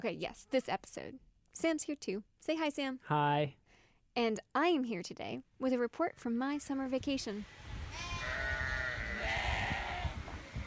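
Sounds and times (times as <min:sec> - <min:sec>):
speech: 0:00.0 - 0:03.6, 0:04.2 - 0:08.1
sheep bleating: 0:07.9 - 0:10.6.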